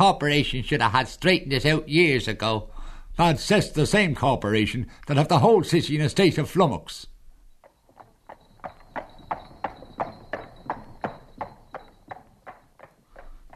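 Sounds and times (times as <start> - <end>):
speech: 0.0 - 7.1
horse hooves clip-clopping on a hard street at a brisk walking pace: 7.5 - 13.5.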